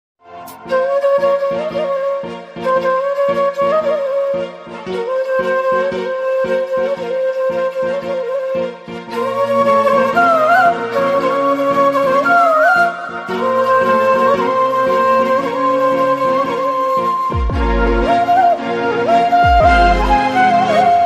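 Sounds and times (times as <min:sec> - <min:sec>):
instrumental flute ringtone: 0:00.3 - 0:21.0.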